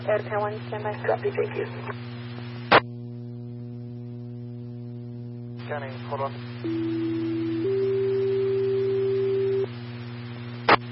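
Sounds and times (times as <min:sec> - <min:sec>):
speech: 0:00.0 - 0:02.2, 0:05.7 - 0:07.4
radio hum: 0:00.0 - 0:10.9
dispatch radio two-tone alert: 0:06.6 - 0:09.6.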